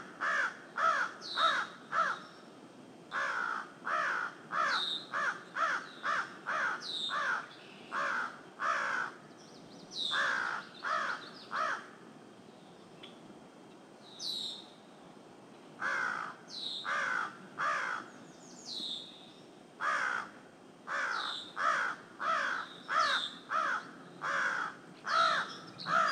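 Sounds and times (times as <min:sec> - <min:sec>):
steady hiss of background noise: 0:00.0 - 0:26.1
crow cawing in short harsh bursts: 0:00.2 - 0:02.2, 0:03.1 - 0:09.2, 0:10.1 - 0:12.0, 0:15.8 - 0:18.1, 0:19.8 - 0:26.1.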